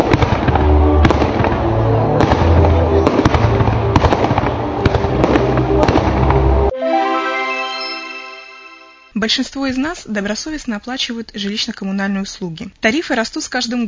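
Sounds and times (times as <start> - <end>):
continuous rumbling roar of fireworks: 0.0 - 6.7
fireworks display bursting: 0.0 - 6.7
music: 0.0 - 9.2
speech: 9.2 - 13.8.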